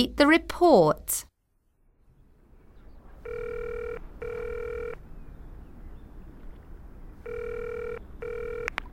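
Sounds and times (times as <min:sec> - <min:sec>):
speech: 0:00.0 - 0:01.3
low hum: 0:00.0 - 0:08.9
telephone ringing with electronic double trills for an emergency call: 0:03.2 - 0:05.0, 0:07.2 - 0:08.7.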